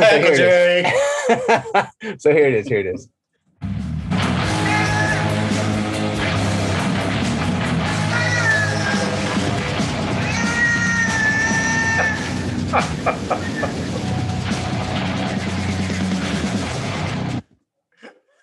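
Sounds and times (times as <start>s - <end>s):
laughter: 0.0s - 3.0s, 10.4s - 14.2s
speech: 0.1s - 3.9s, 12.7s - 13.8s
heavy metal music with distorted guitars and pounding drums: 3.6s - 17.4s.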